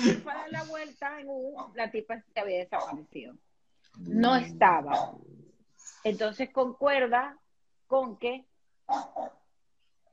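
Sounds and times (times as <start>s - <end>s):
speech: 0.0s - 5.4s, 6.0s - 9.4s
small dog barking: 2.8s - 3.0s, 4.9s - 5.2s, 8.9s - 9.4s.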